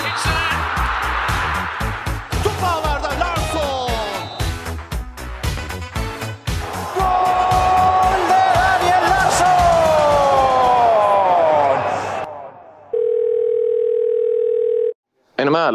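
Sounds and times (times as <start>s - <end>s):
noisy crowd cheering with excited shouting: 0.0s - 4.8s, 6.5s - 12.9s
telephone ringing tone while calling: 12.9s - 15.0s.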